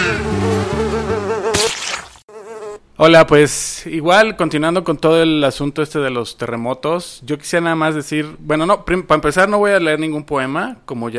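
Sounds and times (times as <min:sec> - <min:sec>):
housefly buzzing: 0:00.0 - 0:02.8
speech: 0:03.0 - 0:11.1.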